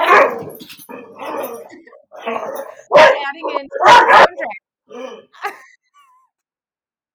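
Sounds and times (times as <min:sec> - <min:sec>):
dog barking and yelping: 0:00.0 - 0:05.6
speech: 0:02.3 - 0:02.6, 0:03.4 - 0:04.3.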